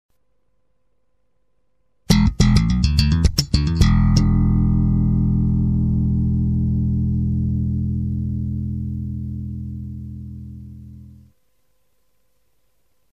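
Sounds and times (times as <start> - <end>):
musical lick loop: 2.1 - 11.3.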